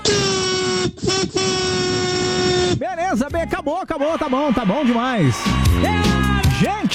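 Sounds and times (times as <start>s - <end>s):
many car horns honking in the street during a protest: 0.0s - 2.8s
speech: 2.9s - 6.9s.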